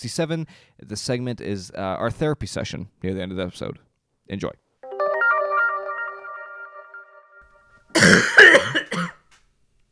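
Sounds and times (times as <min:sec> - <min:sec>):
speech: 0:00.0 - 0:04.6, 0:08.1 - 0:09.1
short melodic tone: 0:04.8 - 0:07.4
person coughing into a microphone: 0:08.0 - 0:09.2.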